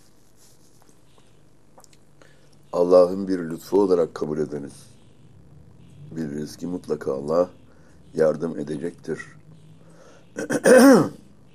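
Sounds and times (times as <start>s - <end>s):
speech: 2.8s - 4.9s, 6.4s - 9.4s, 10.4s - 11.2s
person clearing throat: 10.4s - 11.2s.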